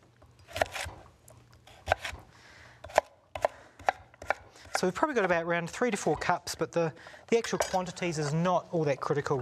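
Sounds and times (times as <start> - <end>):
knife chopping sweet potato on a cutting board: 1.7 - 2.2, 2.8 - 4.9
speech: 4.8 - 9.4.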